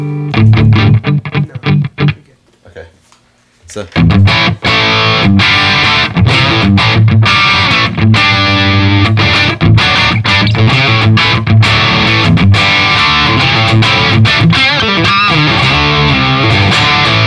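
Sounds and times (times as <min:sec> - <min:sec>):
heavily distorted electric guitar through German-made amplifier: 0:00.0 - 0:02.3, 0:04.0 - 0:17.2
speech: 0:03.7 - 0:06.0.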